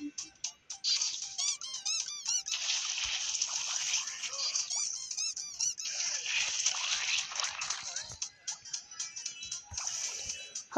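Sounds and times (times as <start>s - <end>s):
creature characters squeaking in a video game battle: 0.8s - 8.1s.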